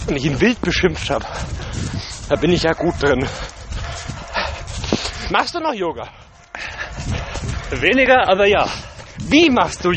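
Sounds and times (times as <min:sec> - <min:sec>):
speech: 0:00.0 - 0:03.5, 0:05.3 - 0:06.2, 0:07.7 - 0:09.9
scuffing sounds: 0:00.0 - 0:05.5, 0:06.1 - 0:09.9
dog barking while held by its owner: 0:02.3 - 0:05.3.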